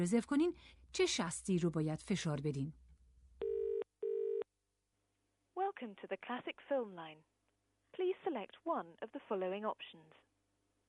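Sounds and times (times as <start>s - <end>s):
speech: 0.0s - 2.8s, 5.8s - 7.3s, 8.0s - 10.3s
electronic telephone dialing tones: 3.4s - 4.4s.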